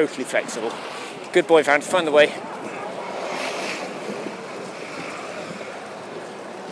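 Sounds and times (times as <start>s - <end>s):
speech: 0.0s - 2.6s
calm water gently washing and lapping: 2.5s - 6.2s.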